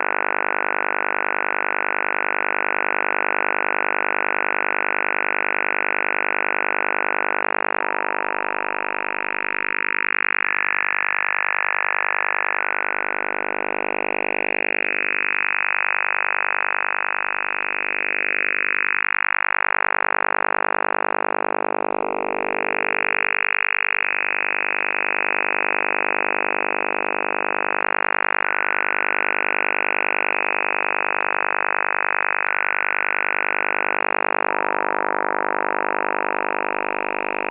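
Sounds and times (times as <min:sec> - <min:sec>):
over-the-horizon radar signal on shortwave: 0:00.0 - 0:37.4.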